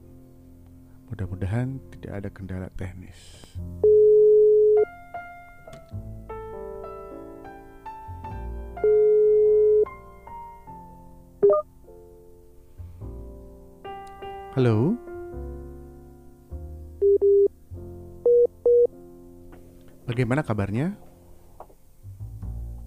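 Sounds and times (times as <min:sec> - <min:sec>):
soft music: 0:00.0 - 0:22.8
speech: 0:01.1 - 0:04.0, 0:05.9 - 0:06.3, 0:14.6 - 0:15.0, 0:20.2 - 0:21.1
outgoing phone call ringback tone: 0:03.8 - 0:04.8, 0:08.8 - 0:09.9, 0:11.4 - 0:11.6, 0:17.0 - 0:17.5, 0:18.3 - 0:18.9.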